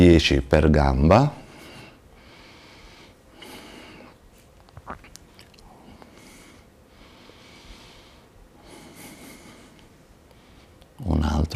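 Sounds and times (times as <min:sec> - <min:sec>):
speech: 0:00.0 - 0:01.4, 0:11.0 - 0:11.5
person inhaling deeply during exercise: 0:01.4 - 0:04.2, 0:05.7 - 0:10.8.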